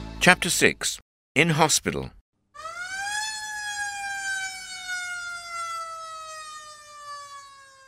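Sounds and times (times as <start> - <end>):
speech: 0.3 - 2.2
ambulance siren wailing: 2.6 - 7.8.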